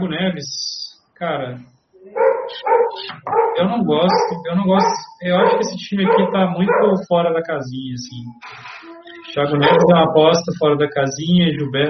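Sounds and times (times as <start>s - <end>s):
speech: 0.0s - 1.8s, 2.5s - 8.7s, 9.3s - 11.8s
dog barking: 2.1s - 7.2s, 9.6s - 10.1s.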